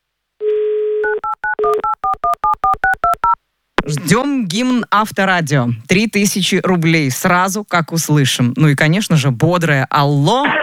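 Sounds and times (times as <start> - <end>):
telephone dial tone: 0.4 - 3.0
speech: 3.9 - 10.6.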